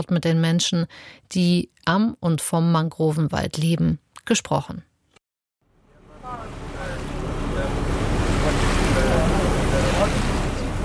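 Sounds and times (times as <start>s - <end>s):
speech: 0.0s - 4.9s
wind: 5.7s - 10.8s
boat moving through water from a harbour to a mangrove forest: 5.8s - 10.8s.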